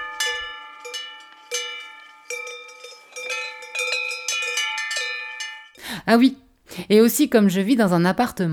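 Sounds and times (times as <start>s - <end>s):
cowbells clanking and ringing in the mountains: 0.0s - 5.8s
speech: 6.0s - 8.5s.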